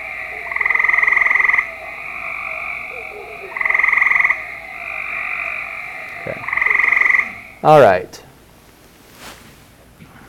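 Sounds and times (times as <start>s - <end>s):
Cope's gray tree frog pulsing trills: 0.0s - 7.8s
speech: 7.6s - 8.2s.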